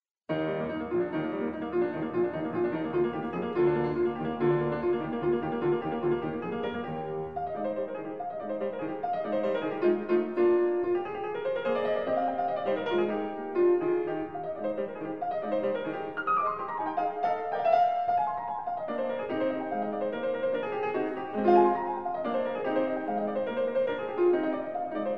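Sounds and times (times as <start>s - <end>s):
crazy piano playing: 0.3s - 25.1s.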